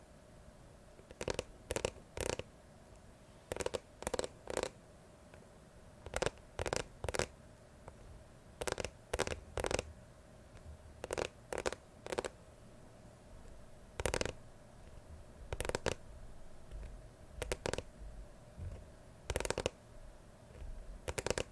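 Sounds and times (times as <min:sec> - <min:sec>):
quiet faint hum: 0:00.0 - 0:21.5
crisp tapping and scratching: 0:01.1 - 0:02.4, 0:03.5 - 0:04.8, 0:06.1 - 0:07.3, 0:08.6 - 0:09.9, 0:10.6 - 0:12.4, 0:14.0 - 0:16.0, 0:16.7 - 0:19.8, 0:20.6 - 0:21.5.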